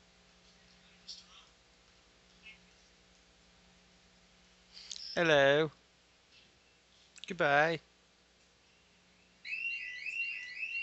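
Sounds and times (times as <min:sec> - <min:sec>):
speech: 0:05.2 - 0:05.8, 0:07.3 - 0:07.9
alarm clock ringing with a shrill warbling electronic tone: 0:09.4 - 0:10.8.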